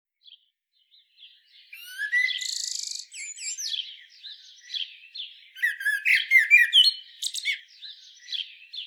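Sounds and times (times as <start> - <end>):
Common blackbird warbling: 1.8 - 4.0, 5.6 - 7.7.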